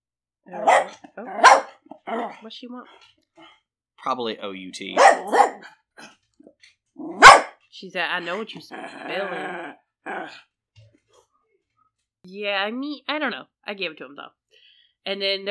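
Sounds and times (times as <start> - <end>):
dog barking: 0.5 - 2.4, 4.9 - 6.1, 7.0 - 7.6, 8.3 - 10.4
speech: 0.5 - 3.2, 4.0 - 6.2, 7.0 - 10.5, 12.2 - 14.4, 15.0 - 15.4.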